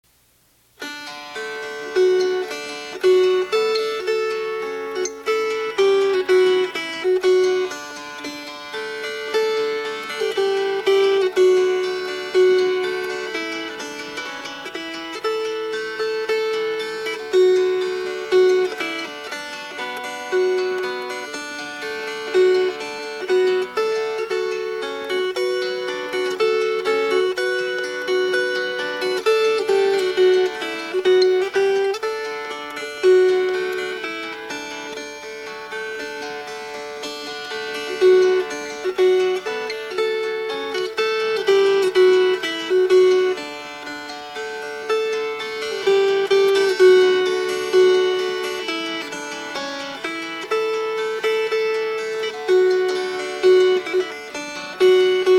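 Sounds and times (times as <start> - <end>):
fingerpicked strings: 0.7 - 55.3.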